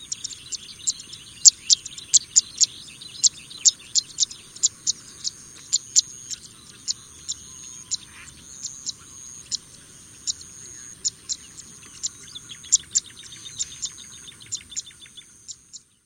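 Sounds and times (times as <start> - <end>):
pipit uttering quick thin high chirps: 0.0 - 15.9.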